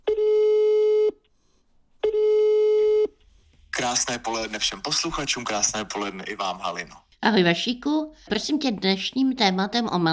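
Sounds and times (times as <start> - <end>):
telephone line beeps while placing a call: 0.1 - 1.2, 2.0 - 3.2
speech: 3.9 - 10.1.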